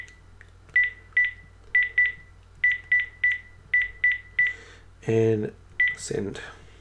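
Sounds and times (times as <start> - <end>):
faint hum: 0.0 - 6.8
electronic telephone keypad dialing beeps: 0.8 - 4.5
speech: 5.0 - 6.6.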